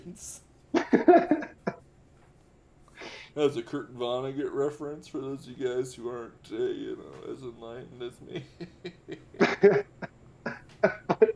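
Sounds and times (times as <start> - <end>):
speech: 0.1 - 0.4, 1.1 - 1.5, 3.4 - 10.0
laughter: 0.8 - 1.8, 8.2 - 11.3
harsh, bursting throaty coughs: 9.4 - 11.3.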